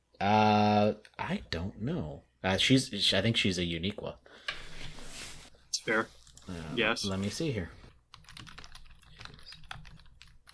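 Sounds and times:
speech: 1.3 - 4.6, 5.8 - 7.8
typing on a computer keyboard: 8.1 - 10.5.

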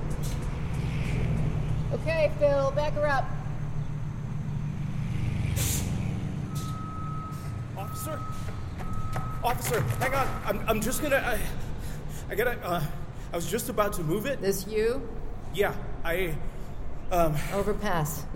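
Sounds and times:
heavy tow truck engine rumbling while towing a car: 0.0 - 18.1
speech: 2.0 - 3.4, 9.4 - 11.6, 12.3 - 16.5, 17.1 - 18.3
tow truck air brakes hissing: 5.6 - 7.6, 8.2 - 8.6
high electronic tow truck reversing beep: 6.5 - 11.0.

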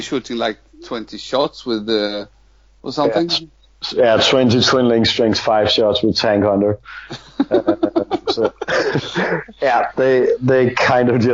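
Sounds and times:
speech: 0.0 - 11.3
laughter: 6.9 - 11.3
short coughs: 7.8 - 9.7.

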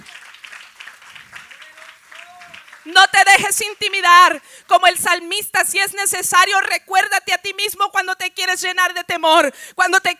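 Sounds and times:
congregation applauding: 0.0 - 4.1
speech: 2.8 - 10.1.

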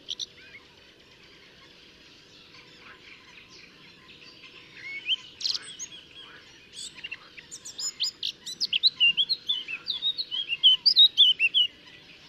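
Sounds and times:
Eurasian blackcap Sylvia atricapilla singing: 0.0 - 0.6, 3.2 - 12.2.

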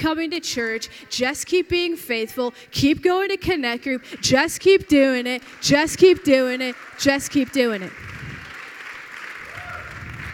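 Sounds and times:
speech: 0.0 - 8.2
church audience applauding: 5.4 - 10.3
faint cheers from a church audience: 9.4 - 10.3.

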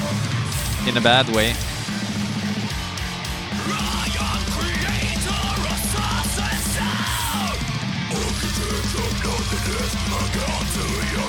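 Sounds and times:
distorted guitars in death thrash metal: 0.0 - 11.2
pounding drums in death thrash metal: 0.5 - 11.2
speech: 0.8 - 1.7
harsh screamed vocals in death thrash metal: 3.6 - 11.2.

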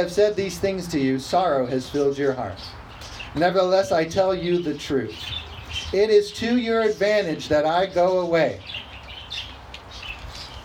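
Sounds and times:
speech: 0.0 - 8.8
several birds chirping: 0.0 - 10.6.

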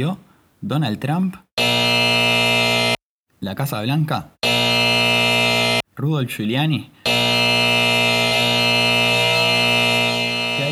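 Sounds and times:
speech: 0.0 - 1.4, 3.4 - 4.8, 6.0 - 7.4
elevator door-left-open alarm buzzer: 1.6 - 3.0, 4.4 - 5.8, 7.0 - 10.7.

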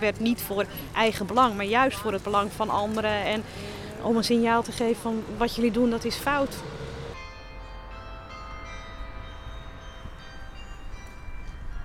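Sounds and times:
speech: 0.0 - 6.8
carillon bells of former town hall ringing: 7.1 - 11.8.

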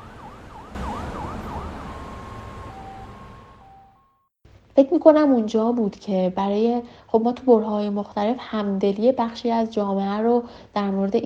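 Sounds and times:
traffic rumble: 0.0 - 3.9
ambulance siren: 0.0 - 4.2
speech: 4.8 - 11.2.

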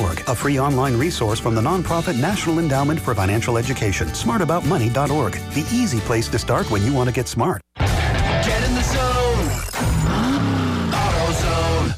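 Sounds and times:
speech: 0.3 - 7.6
car engine revving: 8.8 - 11.9.

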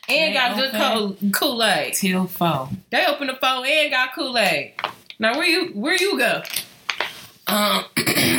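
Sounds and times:
speech: 0.1 - 6.7, 7.5 - 8.3
person clearing throat: 7.5 - 8.3.

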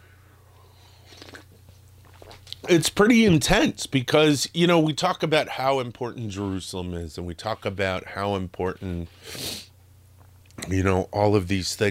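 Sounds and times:
steady low electrical hum: 0.0 - 11.9
person sipping coffee from a cup: 1.0 - 2.6
speech: 2.7 - 9.7, 10.7 - 11.9.

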